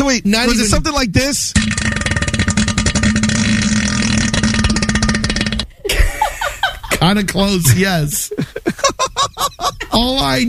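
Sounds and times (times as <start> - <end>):
speech: 0.1 - 2.0, 7.0 - 8.9, 10.0 - 10.4
loud bassy rasping fart echoing in a bathroom toilet bowl: 1.5 - 5.9
laughter: 5.8 - 10.0.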